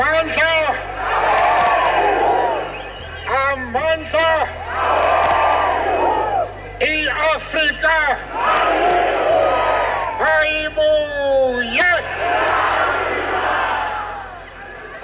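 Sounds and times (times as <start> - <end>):
huge crowd roaring and cheering: 0.0 - 15.0
mass of voices chanting in unison: 0.7 - 3.2, 4.5 - 6.4, 8.2 - 10.2, 12.0 - 15.0.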